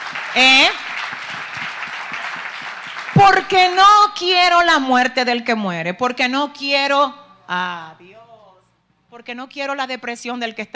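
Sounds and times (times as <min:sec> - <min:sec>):
audience applauding: 0:00.0 - 0:03.6
speech: 0:00.4 - 0:00.8, 0:03.2 - 0:08.1, 0:09.1 - 0:10.7.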